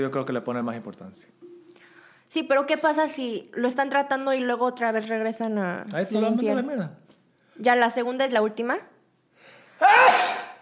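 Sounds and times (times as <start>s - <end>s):
speech: 0.0s - 1.5s, 2.3s - 8.9s
person sneezing: 9.8s - 10.5s.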